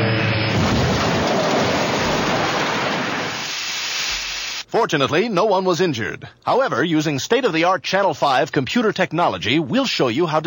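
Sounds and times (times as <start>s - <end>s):
jet airliner crash landing: 0.5s - 3.6s
speech: 4.7s - 10.4s.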